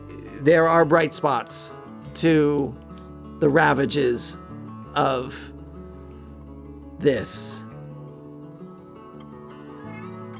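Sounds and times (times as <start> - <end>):
speech: 0.4 - 2.8, 3.4 - 4.4, 5.0 - 5.5, 7.0 - 7.6
cat meowing: 9.8 - 10.3.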